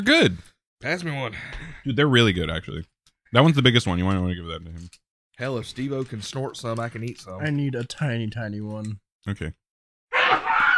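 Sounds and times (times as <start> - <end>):
speech: 0.0 - 9.6
loud sneeze: 10.2 - 10.7.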